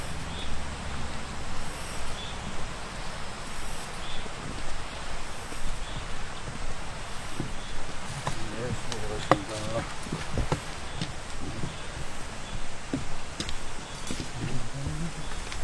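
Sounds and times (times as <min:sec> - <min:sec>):
dense steady hiss: 0:00.0 - 0:15.6
insects chirping during an outdoor stroll: 0:00.0 - 0:15.6
low rumble: 0:00.0 - 0:15.6
brief bird-like calls: 0:01.6 - 0:15.6
faint voices: 0:08.1 - 0:10.4, 0:14.2 - 0:15.6.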